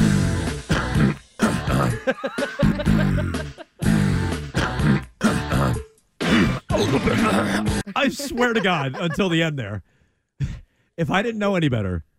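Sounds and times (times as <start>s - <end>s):
loud drawn-out burp: 0.0s - 2.0s, 3.8s - 7.7s
laughter: 1.7s - 4.0s, 6.8s - 9.5s
speech: 2.0s - 3.3s, 8.0s - 12.1s
heavy ragged breathing with grunting exhales: 9.8s - 11.0s.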